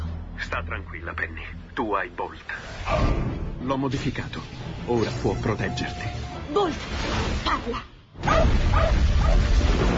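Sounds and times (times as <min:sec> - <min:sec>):
speech: 0:00.5 - 0:09.9
dog barking in a film trailer: 0:08.2 - 0:09.5.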